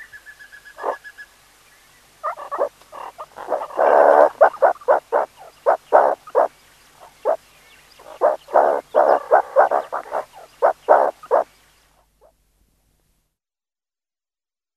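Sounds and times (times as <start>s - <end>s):
meerkat calls: 2.2s - 7.4s, 8.0s - 11.5s.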